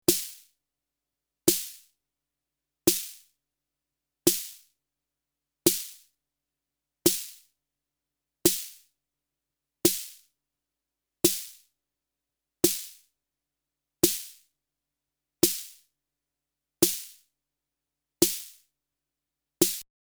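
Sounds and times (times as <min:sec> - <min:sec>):
snare drum: 0:00.1 - 0:00.4, 0:01.5 - 0:01.8, 0:02.9 - 0:03.2, 0:04.3 - 0:04.6, 0:05.7 - 0:06.0, 0:07.1 - 0:07.4, 0:08.5 - 0:08.8, 0:09.9 - 0:10.2, 0:11.3 - 0:11.6, 0:12.7 - 0:13.0, 0:14.0 - 0:14.4, 0:15.4 - 0:15.8, 0:16.8 - 0:17.2, 0:18.2 - 0:18.6, 0:19.6 - 0:19.8.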